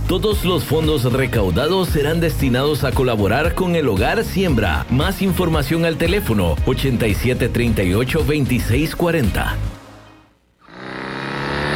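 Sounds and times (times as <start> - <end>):
speech: 0.1 - 9.7
motorcycle engine revving: 10.6 - 11.7.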